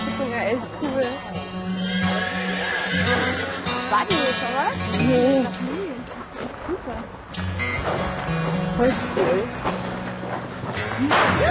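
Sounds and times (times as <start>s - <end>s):
speech: 0.2s - 2.0s, 3.0s - 5.8s, 6.4s - 9.9s
horse whinnying: 1.6s - 3.9s.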